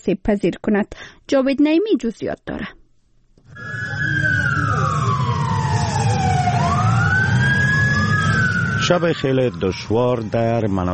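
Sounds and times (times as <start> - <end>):
speech: 0.0 - 2.8, 8.9 - 10.9
ambulance siren wailing in an earthquake-stricken area: 3.5 - 10.9.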